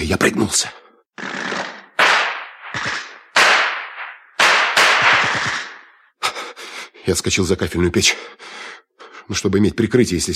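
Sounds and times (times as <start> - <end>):
speech: 0.0 - 1.5, 7.1 - 8.5, 9.3 - 10.3
German submachine gun fire: 2.0 - 5.8.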